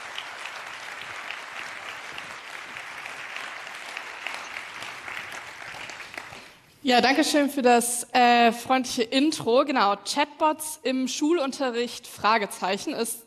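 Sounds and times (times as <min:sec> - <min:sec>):
audience clapping: 0:00.0 - 0:06.7
speech: 0:06.8 - 0:13.2.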